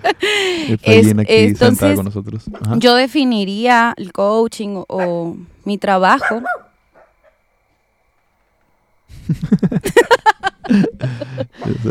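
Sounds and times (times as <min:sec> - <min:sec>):
laughter: 0:00.0 - 0:02.7, 0:09.1 - 0:11.8
speech: 0:00.0 - 0:06.6, 0:09.3 - 0:11.8
small Shih Tzu dog barking: 0:06.2 - 0:07.4.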